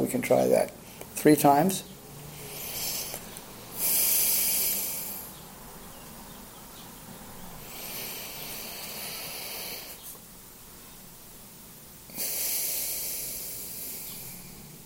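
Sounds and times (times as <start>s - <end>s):
speech: 0.1s - 1.9s
slow deep breathing in and out in a breathing exercise: 2.1s - 5.5s, 7.5s - 10.2s, 12.1s - 14.8s.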